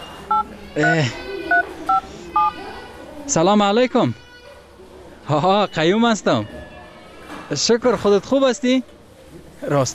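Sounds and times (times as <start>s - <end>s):
telephone keypad tones as a number is dialed: 0.0s - 2.5s
speech: 0.8s - 1.2s, 3.3s - 4.2s, 5.3s - 6.6s, 7.5s - 8.9s, 9.6s - 9.9s.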